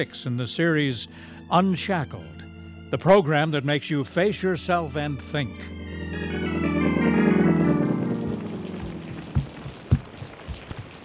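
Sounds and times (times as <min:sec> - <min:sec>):
speech: 0:00.0 - 0:06.5
sustained musical chord: 0:05.2 - 0:09.9
rain falling: 0:08.2 - 0:11.0
sharp drips and splashes: 0:09.3 - 0:11.0.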